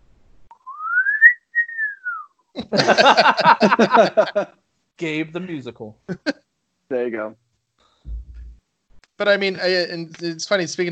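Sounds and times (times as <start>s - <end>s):
person whistling a tune: 0.6s - 2.3s
laughter: 2.6s - 4.6s
speech: 2.6s - 7.4s, 9.2s - 10.9s.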